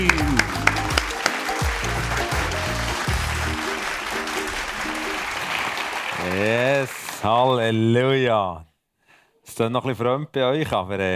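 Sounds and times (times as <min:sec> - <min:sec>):
crowd clapping and cheering: 0:00.0 - 0:07.8
laughter: 0:00.0 - 0:07.8
speech: 0:06.4 - 0:08.7, 0:09.5 - 0:11.1.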